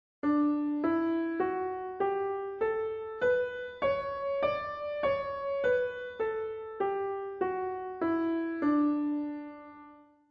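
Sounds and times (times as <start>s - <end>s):
piano playing a D scale: 0.2s - 10.2s.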